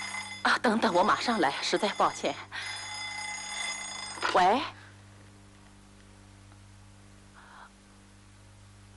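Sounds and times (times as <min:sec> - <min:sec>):
telephone ringing with a buzzing bell tone: 0:00.0 - 0:04.8.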